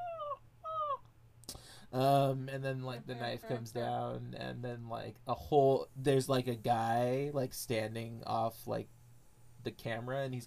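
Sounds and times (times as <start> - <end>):
voice imitating an upset puppy's whimpering scream: 0.0 - 1.1
speech: 1.9 - 9.0, 9.6 - 10.4.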